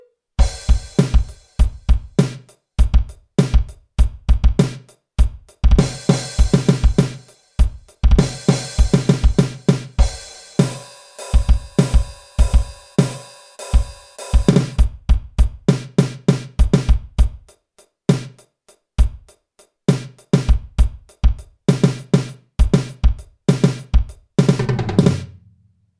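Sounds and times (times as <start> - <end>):
jazz fusion drum kit solo: 0.4 - 25.6.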